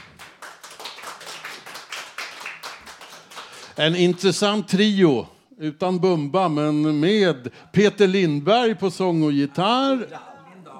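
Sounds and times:
audience applause for three men taking the stage: 0.0 - 3.8
speech: 3.8 - 10.4.

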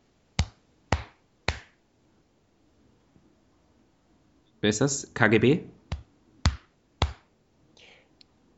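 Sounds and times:
hand patting own shoulder: 0.4 - 1.8, 5.9 - 7.3
speech: 4.6 - 5.8.

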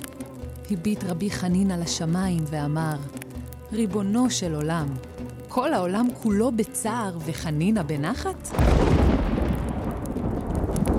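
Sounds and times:
speech: 0.7 - 9.0
steady hiss of rain: 2.5 - 6.1, 8.5 - 10.9
deep rolling thunder: 8.5 - 10.9.

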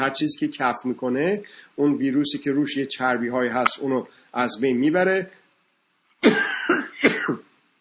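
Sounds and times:
speech: 0.0 - 5.4
forceful rough coughing: 6.2 - 7.5.

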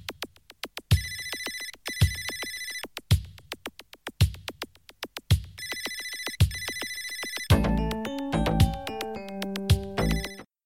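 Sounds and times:
phone ringtone mimicking an old-fashioned bell ringer: 0.9 - 2.9, 5.6 - 10.5.

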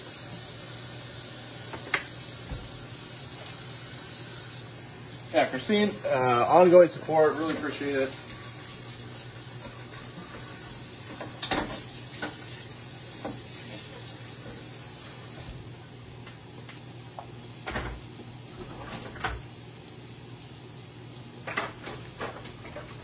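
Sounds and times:
sausage sizzling while frying in a pan: 0.0 - 15.6
speech: 5.3 - 8.2.

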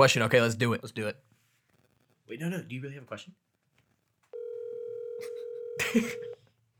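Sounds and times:
speech: 0.0 - 1.3, 2.3 - 3.6, 5.2 - 6.4
telephone tone as a call goes out: 4.4 - 6.4.

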